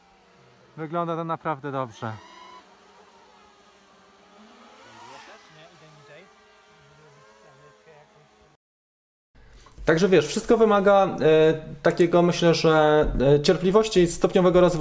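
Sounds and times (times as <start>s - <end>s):
few drones hovering in the air with motor whine: 0.0s - 8.6s
speech: 0.8s - 2.3s, 9.9s - 14.7s.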